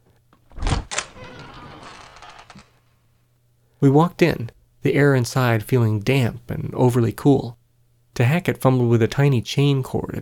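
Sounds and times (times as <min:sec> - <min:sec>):
thick outer door of a fruit cellar thunking: 0:00.4 - 0:02.8
fruit cellar door dragging open with a grinding scrape: 0:00.4 - 0:03.1
speech: 0:03.8 - 0:07.6, 0:08.2 - 0:10.2.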